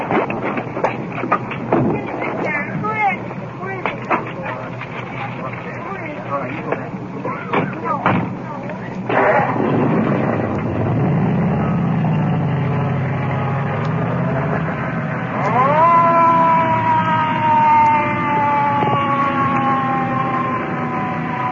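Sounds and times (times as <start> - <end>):
loud rumble of engines and traffic: 0.0 - 21.5
ambulance siren wailing: 11.5 - 21.5.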